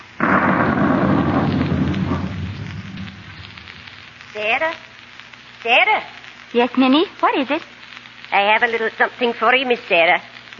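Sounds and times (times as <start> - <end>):
loud thunder rumbling: 0.0 - 4.6
steady rain hissing: 0.0 - 10.5
speech: 4.4 - 4.9, 5.6 - 7.7, 8.3 - 10.5.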